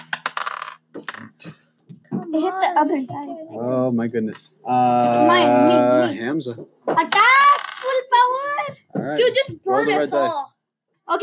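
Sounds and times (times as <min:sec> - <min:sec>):
dice rolling on a hard table during a tabletop game: 0:00.0 - 0:01.3, 0:07.1 - 0:08.0
speech: 0:02.3 - 0:07.2, 0:09.0 - 0:10.5.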